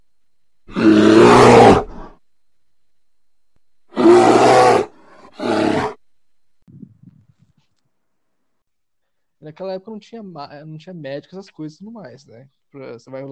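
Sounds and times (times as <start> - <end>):
bear roaring during attack: 0.7 - 2.2, 3.9 - 6.0
speech: 9.6 - 13.3.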